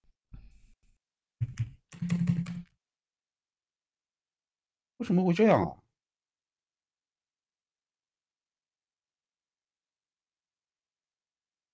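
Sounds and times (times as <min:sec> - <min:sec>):
computer keyboard typing with erratically jumping keys: 0:01.4 - 0:02.7
speech: 0:05.0 - 0:05.8.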